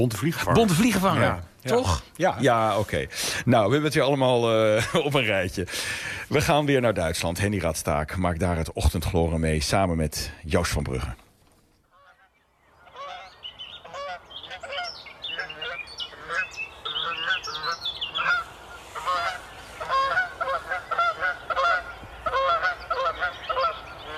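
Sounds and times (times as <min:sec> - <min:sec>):
speech: 0:00.0 - 0:11.2
Canada geese honking in trumpeting calls at dawn in Germany: 0:11.9 - 0:24.1.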